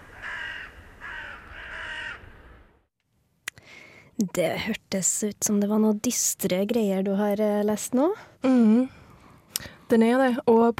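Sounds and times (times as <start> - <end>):
crow cawing: 0.0 - 2.4
speech: 4.2 - 9.0, 9.9 - 10.7.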